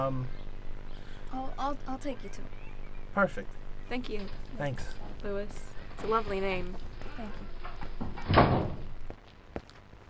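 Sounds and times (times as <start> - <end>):
speech: 0.0 - 0.4, 1.3 - 8.8
door swinging shut: 7.6 - 8.9.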